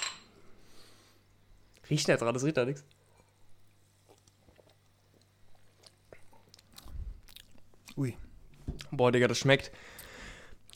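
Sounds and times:
glasses clinking in a toast: 0.0s - 0.3s
faint hum: 0.0s - 10.7s
speech: 1.9s - 3.0s, 8.0s - 8.2s, 8.9s - 9.9s.

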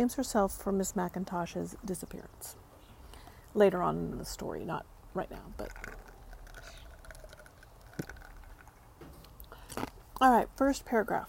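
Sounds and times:
speech: 0.0s - 2.6s, 3.6s - 6.0s, 10.2s - 11.2s
crisp crunching of ice being chewed: 5.4s - 10.2s.

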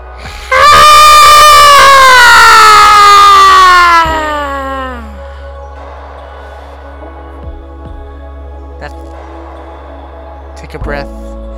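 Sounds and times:
person letting out a loud raw guttural scream: 0.5s - 5.1s.

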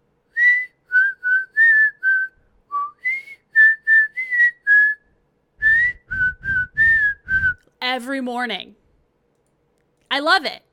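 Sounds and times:
person whistling a video game tune: 0.3s - 7.7s
speech: 8.0s - 8.8s, 10.1s - 10.6s.

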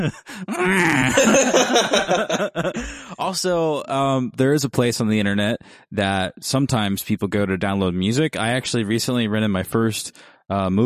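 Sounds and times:
laughter: 0.0s - 3.2s
speech: 0.0s - 10.8s
voice imitating a confetti cannon crushed by a snowplow: 0.4s - 1.4s.

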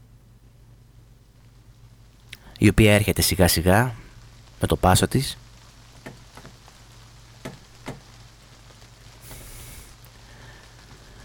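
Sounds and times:
light rain patter: 0.0s - 11.2s
low constant hum: 0.0s - 11.2s
speech: 2.6s - 4.0s, 4.6s - 5.5s
brief hiss: 9.2s - 11.2s.

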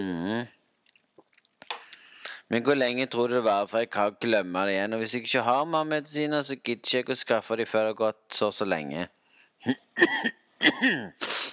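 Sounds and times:
speech: 0.0s - 0.6s, 2.5s - 11.3s
person coughing: 9.6s - 11.5s.

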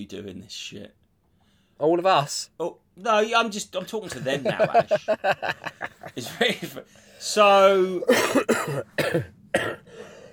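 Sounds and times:
speech: 0.0s - 1.0s, 1.8s - 10.1s
laughter: 4.0s - 6.9s
person coughing: 8.1s - 9.9s.

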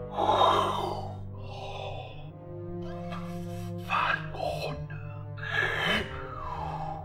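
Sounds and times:
eerie breathy gasps and exhales: 0.0s - 7.0s.

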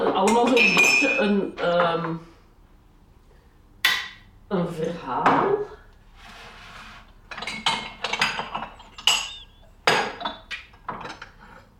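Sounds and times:
ceramic mugs clinking as they are lifted out: 0.2s - 1.3s, 7.3s - 11.3s
speech: 0.2s - 2.3s, 4.5s - 5.8s.

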